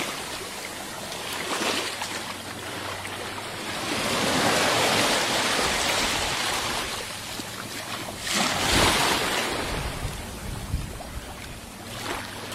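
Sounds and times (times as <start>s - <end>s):
flowing water rushing and splashing: 0.0s - 12.5s.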